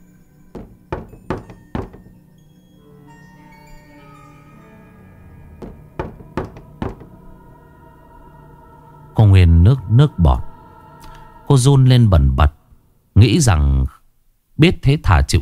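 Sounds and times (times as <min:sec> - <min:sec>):
knocking on a bedroom door: 0:00.5 - 0:02.2, 0:05.6 - 0:07.2
speech: 0:09.2 - 0:10.5, 0:11.5 - 0:12.6, 0:13.2 - 0:14.0, 0:14.6 - 0:15.3.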